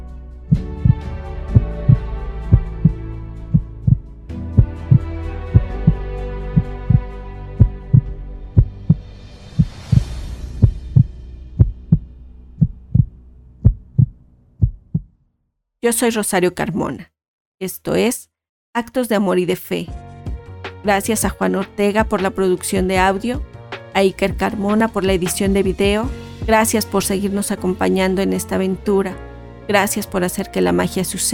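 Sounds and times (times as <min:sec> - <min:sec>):
forceful heartbeat thumping: 0:00.5 - 0:15.1, 0:22.8 - 0:23.5
speech: 0:15.8 - 0:20.0, 0:20.8 - 0:31.3.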